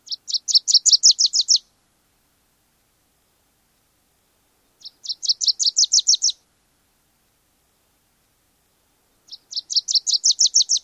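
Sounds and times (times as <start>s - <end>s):
Wilson's warbler songs: 0.0s - 1.7s, 4.6s - 6.4s, 9.2s - 10.8s.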